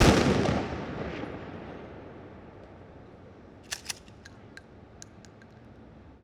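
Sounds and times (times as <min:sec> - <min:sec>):
Mossberg shotgun blast: 0:00.0 - 0:00.8
Mossberg shotgun reloading: 0:03.7 - 0:05.7.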